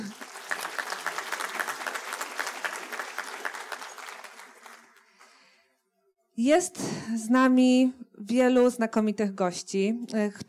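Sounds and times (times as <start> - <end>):
audience applause at an event thanking its sponsors: 0.0 - 5.4
speech: 6.4 - 10.4.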